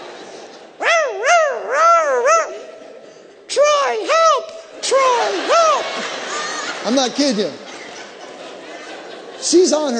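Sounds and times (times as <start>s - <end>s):
teacup chihuahua yelping and whimpering: 0.8s - 2.8s
laughter: 3.7s - 9.9s
speech: 6.9s - 7.6s, 9.4s - 9.9s.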